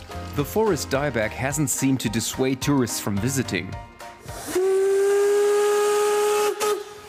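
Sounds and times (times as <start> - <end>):
speech: 0.4 - 4.0
narrow gauge steam locomotive whistle: 4.2 - 7.0.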